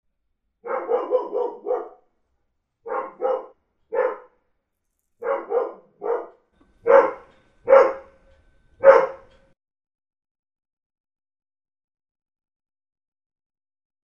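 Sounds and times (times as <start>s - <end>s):
dog barking: 0.6s - 2.0s, 2.8s - 4.4s, 5.2s - 8.2s, 8.8s - 9.4s.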